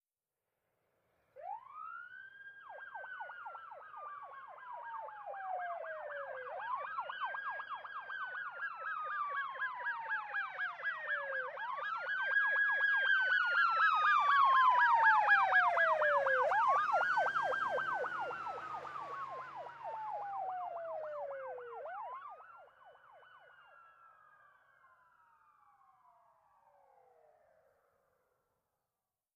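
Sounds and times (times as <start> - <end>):
ambulance siren: 1.4 - 27.8.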